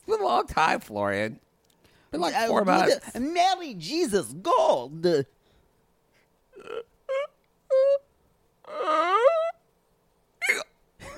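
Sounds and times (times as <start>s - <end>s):
speech: 0.3s - 1.5s, 2.1s - 5.4s
person giving sharp squeaky hiccups: 6.6s - 8.0s, 10.4s - 10.8s.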